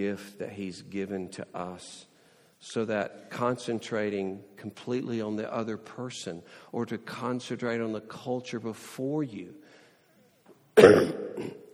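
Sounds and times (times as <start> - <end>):
speech: 0.0 - 9.8, 10.8 - 11.6
allergy cough: 10.8 - 11.7.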